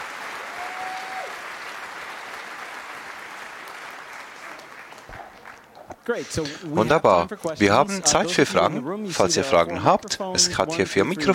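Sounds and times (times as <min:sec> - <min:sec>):
large audience applause in a hall: 0:00.0 - 0:06.2
speech: 0:06.1 - 0:11.3.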